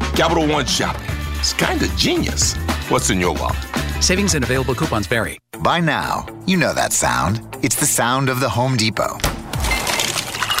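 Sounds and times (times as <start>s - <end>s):
speech: 0.2s - 9.4s
slow-melting craft ice clinking in a glass: 9.7s - 10.5s.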